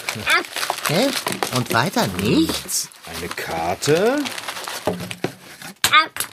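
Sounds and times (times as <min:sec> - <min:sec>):
packing paper crinkling while unpacking a parcel: 0:00.0 - 0:05.8
speech: 0:00.2 - 0:05.2
person exclaiming: 0:01.8 - 0:02.9.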